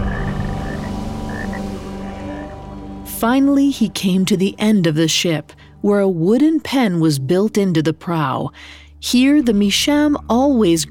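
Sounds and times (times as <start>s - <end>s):
dense chorus of frogs croaking: 0.0s - 3.0s
speech: 3.2s - 10.8s.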